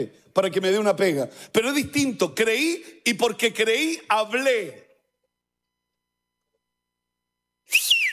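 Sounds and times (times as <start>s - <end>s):
speech: 0.0s - 4.8s
person whistling a short swooping note: 7.7s - 8.1s.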